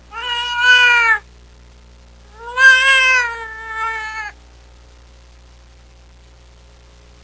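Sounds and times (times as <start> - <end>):
lion cub: 0.1 - 1.3, 2.3 - 4.4.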